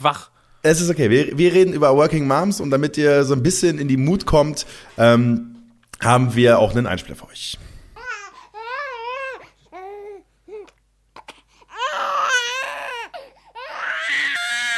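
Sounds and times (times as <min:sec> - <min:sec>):
speech: 0:00.0 - 0:07.7
infant crying and screaming: 0:08.0 - 0:14.7.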